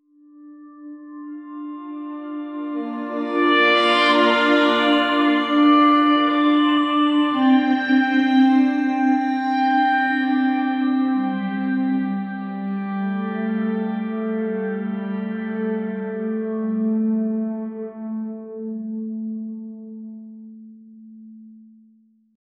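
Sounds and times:
calm music: 0.0s - 22.2s.

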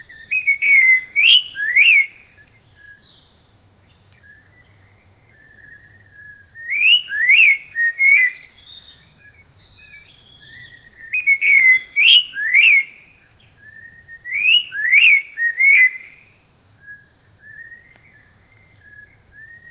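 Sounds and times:
tropical forest birds: 0.0s - 19.7s.

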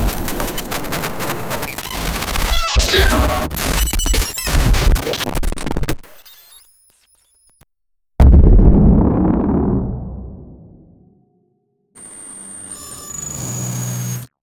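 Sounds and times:
digital glitch boom: 1.6s - 4.6s, 8.2s - 11.0s.

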